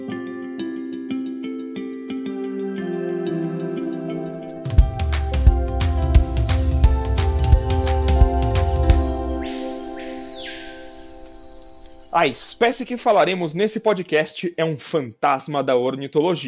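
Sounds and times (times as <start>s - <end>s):
short instrumental podcast intro jingle: 2.9s - 13.0s
speech: 12.2s - 16.4s.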